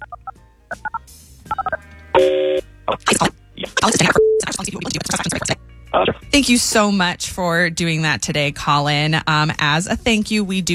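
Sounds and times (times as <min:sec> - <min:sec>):
phone keypad touch-tone beeps: 0:00.0 - 0:06.2
speech: 0:02.9 - 0:04.9, 0:06.0 - 0:10.7.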